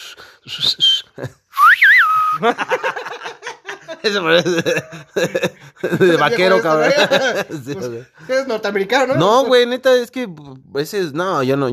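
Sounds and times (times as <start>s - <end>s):
person whistling a short sliding tone: 0.0s - 2.4s
speech: 0.2s - 1.4s, 2.4s - 2.9s, 4.0s - 11.7s
people chuckling: 0.5s - 7.9s.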